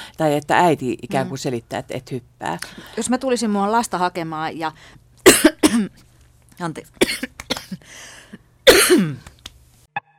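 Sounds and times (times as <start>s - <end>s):
speech: 0.2s - 5.0s, 5.7s - 9.3s
person coughing forcefully: 5.3s - 6.0s, 7.0s - 7.8s, 8.6s - 9.3s
breathy throat clearing: 8.7s - 9.3s.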